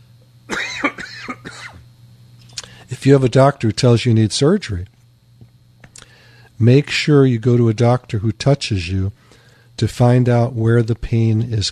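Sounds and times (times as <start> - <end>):
steady low hum: 0.0 - 11.7
person coughing harshly: 0.5 - 1.8
speech: 3.0 - 5.0, 6.6 - 11.7.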